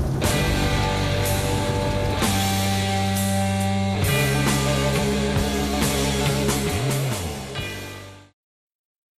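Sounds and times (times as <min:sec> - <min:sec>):
descending tritone: 0:00.2 - 0:03.1, 0:04.0 - 0:08.1.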